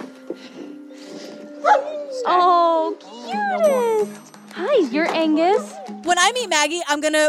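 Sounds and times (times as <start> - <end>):
search dogs barking and whimpering with yips and whining cries: 1.1 - 3.9, 5.3 - 6.1
speech: 4.9 - 7.2.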